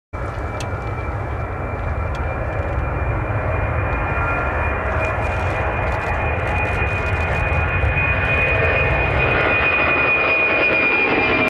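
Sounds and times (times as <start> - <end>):
Airbus Beluga aircraft: 0.2 - 11.4.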